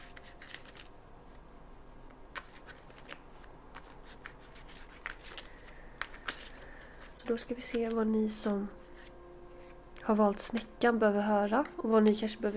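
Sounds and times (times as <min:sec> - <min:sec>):
deck of tarot cards being shuffled: 0:00.0 - 0:12.5
speech: 0:07.3 - 0:08.8, 0:10.1 - 0:12.5.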